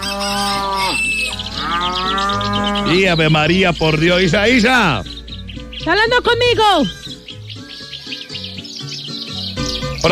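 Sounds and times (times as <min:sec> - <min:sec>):
dairy cow mooing: 0:00.0 - 0:03.2
speech: 0:02.9 - 0:05.1, 0:05.8 - 0:07.0.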